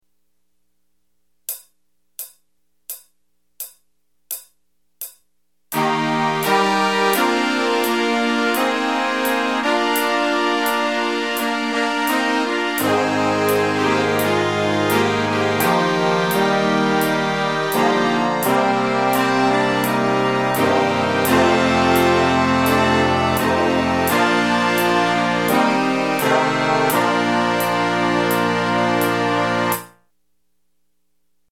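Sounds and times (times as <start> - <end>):
old toy train horns: 5.8 - 29.9.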